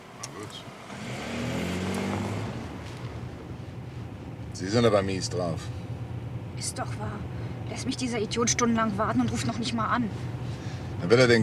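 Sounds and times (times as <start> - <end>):
car accelerating away: 0.2 - 3.5
speech: 4.6 - 5.8, 6.6 - 11.4.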